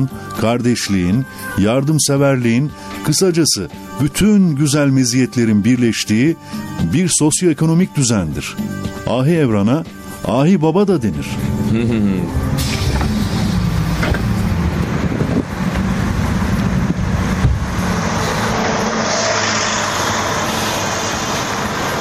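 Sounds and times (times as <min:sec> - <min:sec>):
speech: 0:00.0 - 0:12.9
road traffic in the city centre of Kırşehir, Turkey: 0:01.2 - 0:04.0, 0:06.4 - 0:06.8, 0:08.6 - 0:22.0
bus engine rumbling in Kırşehir city centre, Turkey: 0:08.8 - 0:22.0.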